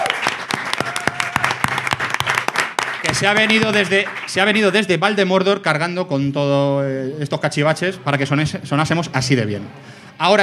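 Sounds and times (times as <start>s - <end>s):
live audience applauding at an on-stage show: 0.0s - 4.9s
speech: 3.0s - 10.4s.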